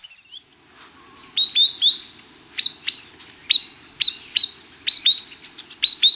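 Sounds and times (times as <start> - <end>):
spotted sandpiper: 0.5 - 6.1.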